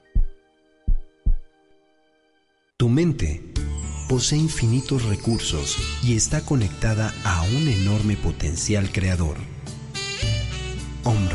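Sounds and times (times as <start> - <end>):
deep thumping heartbeat sound effect: 0.1 - 1.5
speech: 2.8 - 3.5, 4.1 - 9.6, 11.1 - 11.3.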